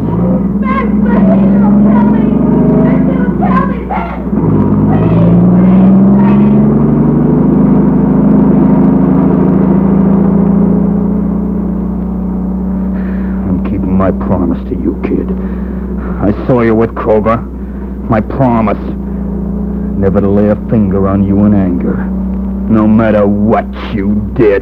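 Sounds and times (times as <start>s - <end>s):
car engine revving and pulling away: 0.0s - 24.6s
person shouting: 0.4s - 4.3s, 4.9s - 6.7s
speech: 16.5s - 19.0s, 20.0s - 24.6s.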